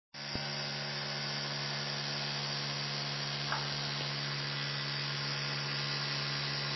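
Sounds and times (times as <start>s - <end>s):
electric toothbrush: 0.2s - 6.7s.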